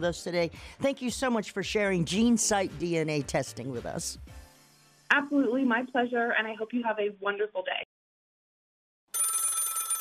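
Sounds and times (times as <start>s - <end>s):
speech: 0.0s - 4.4s, 5.1s - 7.9s
old-fashioned telephone bell ringing: 9.1s - 9.9s.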